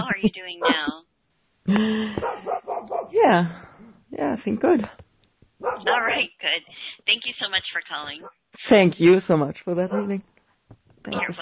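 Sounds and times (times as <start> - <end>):
speech: 0.2 - 1.0, 1.7 - 2.4, 3.3 - 3.6, 4.4 - 5.0, 5.7 - 10.3, 11.0 - 11.4
dog barking into a drawn-out wavering yowl: 2.2 - 3.2, 5.6 - 6.2, 9.9 - 10.2.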